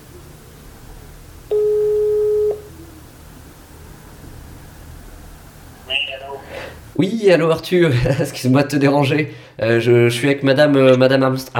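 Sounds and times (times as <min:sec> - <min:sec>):
low hum: 0:00.0 - 0:11.5
telephone ringback tone while a call is placed: 0:01.5 - 0:02.7
speech: 0:06.2 - 0:11.5.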